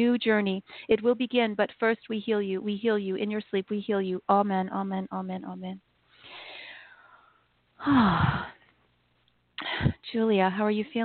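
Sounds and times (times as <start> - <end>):
speech: 0.0 - 5.9, 7.8 - 8.6, 9.6 - 11.0
breathy person yawning: 7.8 - 8.6.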